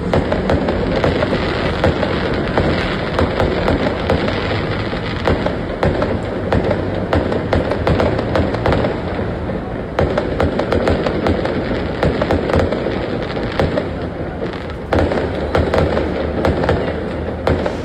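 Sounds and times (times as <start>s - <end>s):
fireworks crackling and popping: 0.0s - 17.8s.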